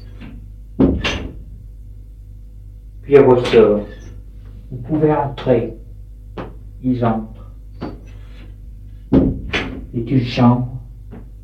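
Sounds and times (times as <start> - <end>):
low rumble: 0.0 - 11.4
speech: 3.1 - 4.0, 4.7 - 5.8, 6.8 - 8.0, 10.0 - 10.8
knocking on a door: 9.1 - 9.8.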